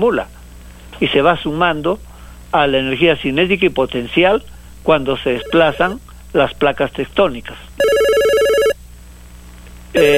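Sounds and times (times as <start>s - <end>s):
speech: 0.0s - 0.4s, 1.0s - 7.9s, 10.0s - 10.1s
electronic telephone ringtone signalling an incoming call: 5.3s - 6.0s, 7.8s - 8.8s.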